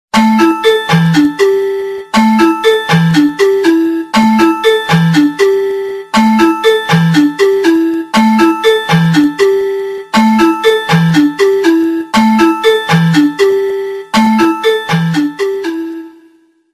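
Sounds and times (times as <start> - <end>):
bottle tone ringtone: 0.2 - 16.5.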